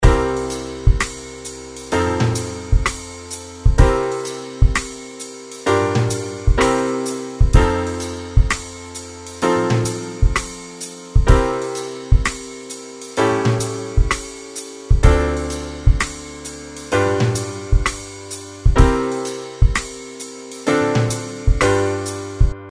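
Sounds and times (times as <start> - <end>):
blues A7 chord: 0.0 - 22.6.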